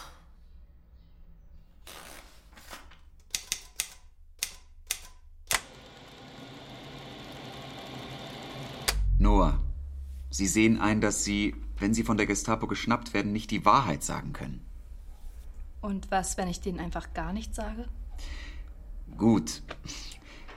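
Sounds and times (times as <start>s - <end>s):
typewriter typing a report: 3.2s - 5.7s
speech: 10.4s - 14.7s, 15.8s - 18.5s, 19.2s - 20.1s.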